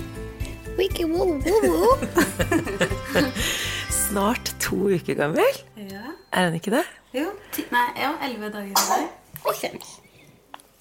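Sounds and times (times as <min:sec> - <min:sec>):
speech: 0:00.8 - 0:03.5, 0:04.1 - 0:10.0
laughter: 0:01.5 - 0:03.8
eleven-day-old newborn baby girl sneezing on a sofa at home: 0:08.8 - 0:09.2.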